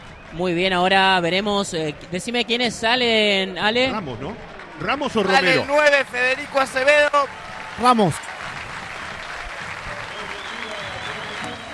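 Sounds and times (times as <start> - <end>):
large stadium crowd applauding a substituted player: 0.0 - 11.7
speech: 0.3 - 8.3
faint whistle: 10.0 - 11.7.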